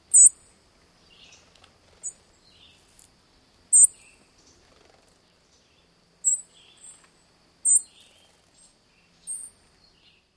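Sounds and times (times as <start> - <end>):
Song Sparrow contact call: 0.2 - 0.4, 1.1 - 3.0, 3.7 - 4.6, 5.3 - 7.1, 7.6 - 10.3.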